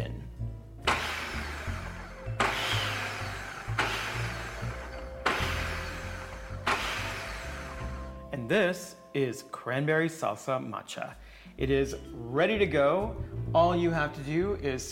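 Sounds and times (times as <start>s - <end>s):
kitchen food processor pulsing to mix cranberry salsa ingredients: 0.9s - 8.2s
speech: 8.5s - 14.8s.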